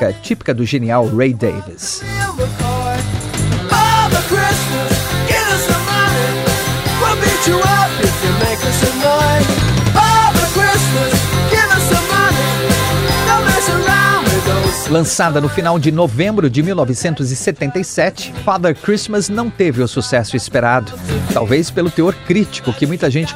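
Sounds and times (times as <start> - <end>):
speech: 0.0 - 2.7, 7.2 - 9.6, 14.9 - 23.3
fast rock drums: 2.1 - 17.6, 20.9 - 23.0
prominent punk rock guitar riff: 2.2 - 15.6
bright jingling Christmas bells: 5.4 - 15.2.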